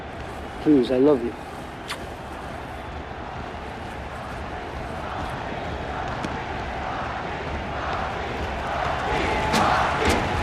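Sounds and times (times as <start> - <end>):
vast crowd murmur in an arena: 0.0 - 10.4
speech: 0.6 - 1.5
crowd whistles in an arena: 1.7 - 3.0.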